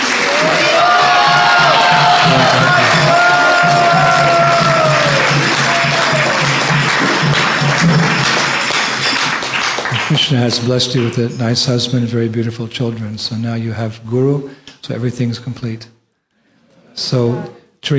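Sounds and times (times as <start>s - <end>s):
cheers and whoops: 0.0s - 6.8s
crowd applauding: 0.0s - 11.3s
raised voices calling out: 0.2s - 6.6s
speech: 10.3s - 16.0s, 17.0s - 17.9s.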